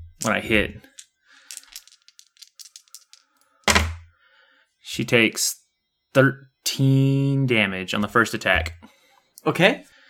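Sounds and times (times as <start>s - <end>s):
dice including a six-sided die rolled for a tabletop role-playing game: 0.1s - 4.0s
speech: 0.2s - 0.9s, 5.0s - 9.9s.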